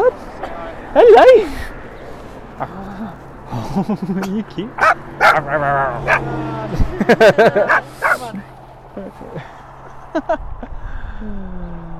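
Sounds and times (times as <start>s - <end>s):
laughter: 0.0s - 11.9s
speech: 1.0s - 1.6s, 2.6s - 8.4s, 10.2s - 10.5s
small dog whining: 4.8s - 6.4s.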